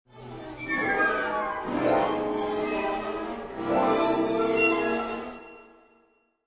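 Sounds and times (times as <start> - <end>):
mysterious orchestral music: 0.1 - 6.2.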